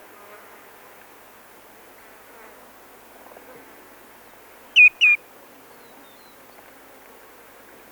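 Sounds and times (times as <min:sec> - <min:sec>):
common greenshank giving ringing whistled notes: 0:04.8 - 0:05.2.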